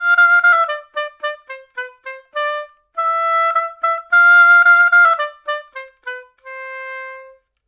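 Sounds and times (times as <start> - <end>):
oboe: 0.0 - 7.6.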